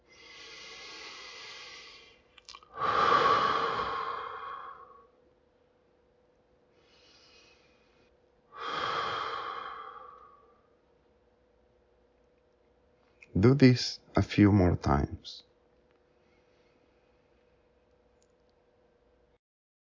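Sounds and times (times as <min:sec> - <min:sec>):
deep breathing in through the nose and out through the mouth during a breathing exercise: 0:00.0 - 0:05.2, 0:06.7 - 0:10.8, 0:16.1 - 0:17.7
speech: 0:13.4 - 0:15.5.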